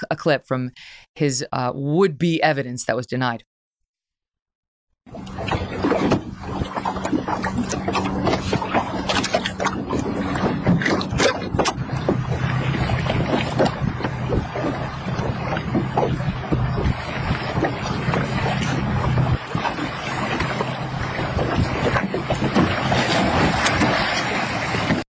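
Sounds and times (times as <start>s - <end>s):
speech: 0.0s - 3.5s
14-foot fishing boat knocking and sloshing on open water: 5.1s - 25.1s
wind gusts across the microphone over open water: 5.6s - 25.0s.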